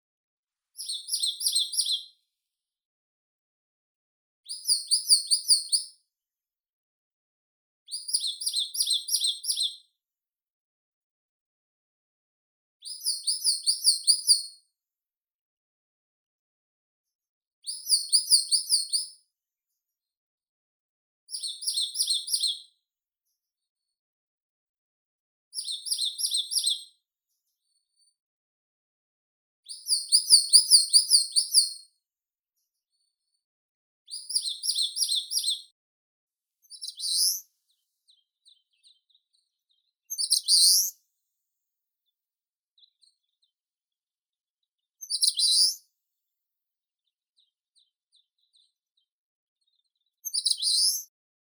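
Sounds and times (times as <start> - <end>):
pale-crowned leaf warbler Phylloscopus coronatus: 0.8 - 2.1, 4.5 - 5.9, 7.9 - 9.8, 12.8 - 14.5, 17.7 - 19.1, 21.3 - 22.6, 25.6 - 26.8, 29.7 - 31.8, 34.1 - 35.6, 36.7 - 37.4, 40.1 - 40.9, 45.0 - 45.8, 50.2 - 51.0.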